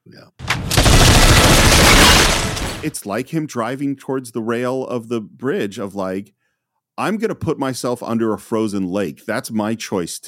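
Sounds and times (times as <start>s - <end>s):
rapid burst of film gunfire shooting a hole through ice: 0.4s - 3.0s
speech: 2.8s - 6.4s, 7.0s - 10.2s.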